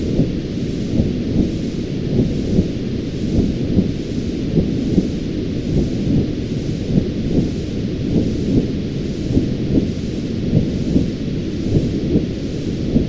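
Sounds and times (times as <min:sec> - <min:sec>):
soft slow pulsing: 0:00.0 - 0:13.0
womb-like deep muffled rumbling whoosh: 0:00.0 - 0:13.0.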